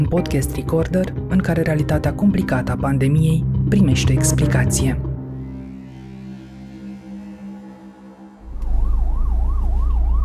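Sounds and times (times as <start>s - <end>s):
speech: 0.0s - 5.1s
ambulance siren wailing: 5.2s - 10.2s.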